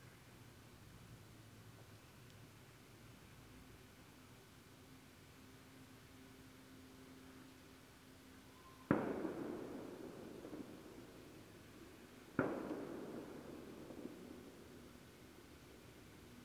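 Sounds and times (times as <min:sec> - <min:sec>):
quiet steady outdoor hiss: 0:00.0 - 0:16.4
rumbling echo of fireworks: 0:08.9 - 0:15.5
small fireworks display bangs in a nearby town: 0:08.9 - 0:16.4.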